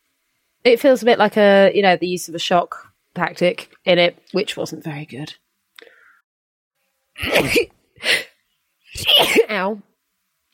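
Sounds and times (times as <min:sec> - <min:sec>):
speech: 0:00.6 - 0:05.4, 0:07.2 - 0:08.2, 0:08.9 - 0:09.9
person sneezing: 0:07.2 - 0:08.4, 0:09.0 - 0:09.5.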